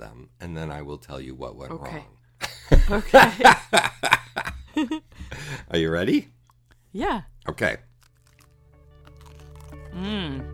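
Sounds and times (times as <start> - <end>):
speech: 0.2 - 7.9, 10.0 - 10.5
laughter: 2.4 - 5.6
low steady hum: 2.4 - 7.9
crunching of a crunchy cornflake cookie being bitten and chewed: 6.5 - 9.9.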